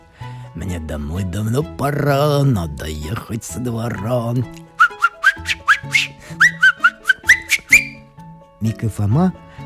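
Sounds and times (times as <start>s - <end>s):
soft low musical backing: 0.0s - 9.6s
speech: 0.6s - 4.6s, 8.6s - 9.4s
person whistling a lively tune: 4.8s - 8.0s.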